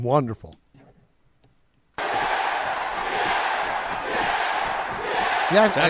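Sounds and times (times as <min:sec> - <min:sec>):
speech: 0:00.0 - 0:00.6, 0:05.5 - 0:05.8
large crowd of fans screaming a chant of a network's name: 0:02.0 - 0:05.8.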